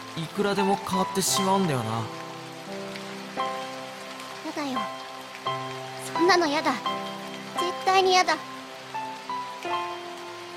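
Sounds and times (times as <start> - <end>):
steady rain falling: 0.0 - 10.5
speech: 0.2 - 2.2, 4.5 - 5.6, 6.2 - 8.5, 9.6 - 9.9.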